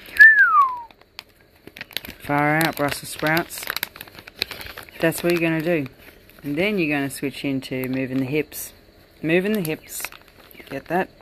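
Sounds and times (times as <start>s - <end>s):
clear human whistle sliding downward in pitch: 0.1s - 0.9s
speech: 2.3s - 3.7s, 5.0s - 10.1s, 10.7s - 11.1s.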